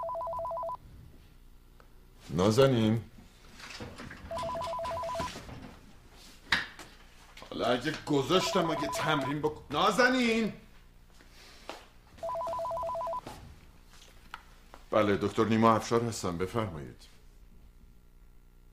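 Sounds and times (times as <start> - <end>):
telephone ringing in short electronic bursts: 0.0 - 0.8, 4.3 - 5.4, 8.3 - 9.5, 12.2 - 13.3
speech: 2.3 - 3.1, 7.6 - 10.6, 15.0 - 17.1.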